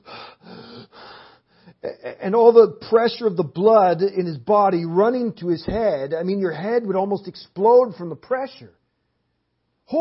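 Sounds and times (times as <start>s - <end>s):
voice imitating someone gasping for air: 0.0s - 1.3s
speech: 1.8s - 8.8s.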